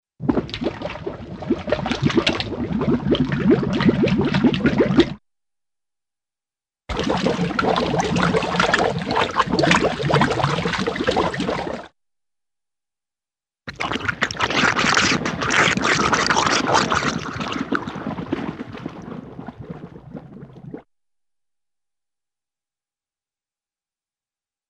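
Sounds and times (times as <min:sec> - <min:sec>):
large cartoon bubbles rising to surface with bloop: 0:00.2 - 0:05.2, 0:06.9 - 0:11.9, 0:13.7 - 0:20.9.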